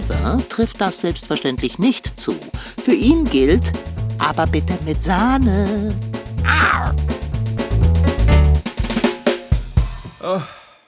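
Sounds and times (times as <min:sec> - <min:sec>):
rhythmic music-like tones with a pulsing low beat: 0:00.0 - 0:10.2
speech: 0:00.1 - 0:07.2, 0:10.2 - 0:10.6
tomcat meowing: 0:06.4 - 0:07.0.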